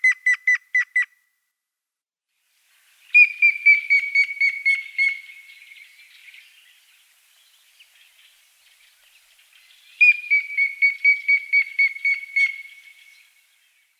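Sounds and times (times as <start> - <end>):
Grey-headed woodpecker calling in whistled series in Russia: 0.0 - 1.2, 3.1 - 6.6, 9.8 - 13.3.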